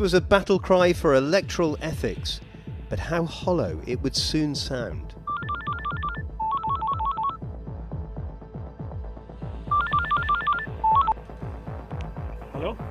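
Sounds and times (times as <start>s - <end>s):
speech: 0.0s - 5.2s
telephone keypad tones as a number is dialed: 5.3s - 7.4s, 9.7s - 11.2s.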